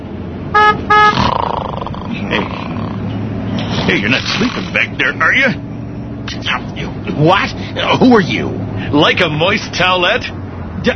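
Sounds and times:
low vehicle rumble: 0:00.0 - 0:10.9
loud car horn blasts: 0:00.5 - 0:01.2
speech: 0:03.9 - 0:05.6, 0:06.3 - 0:10.9.

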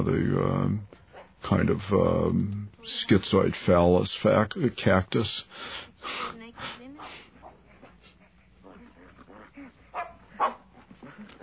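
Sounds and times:
speech: 0:00.0 - 0:06.7
dog whimpering: 0:07.1 - 0:11.4
dog barking: 0:09.9 - 0:10.8.

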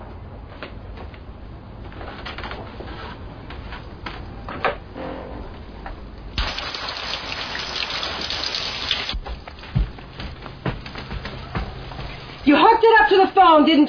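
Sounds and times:
shower water spraying: 0:06.4 - 0:09.2
speech: 0:12.8 - 0:13.8.

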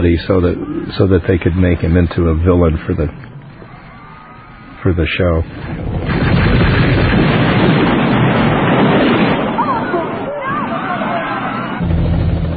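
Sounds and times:
speech: 0:00.0 - 0:03.3, 0:04.8 - 0:06.1
crowd shouting and crying agitatedly: 0:03.5 - 0:04.8, 0:09.5 - 0:11.8
explosions: 0:05.4 - 0:12.5.

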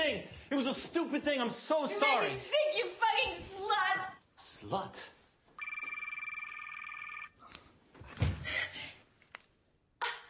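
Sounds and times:
speech: 0:00.1 - 0:05.2
cell phone ringing: 0:05.6 - 0:07.4.

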